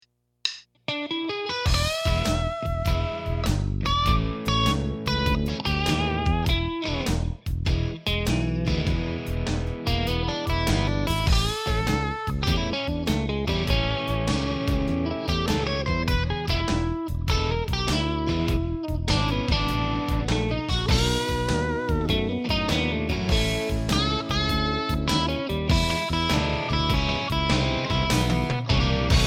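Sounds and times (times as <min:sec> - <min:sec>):
guitar playing blues scales: 0:00.9 - 0:29.2.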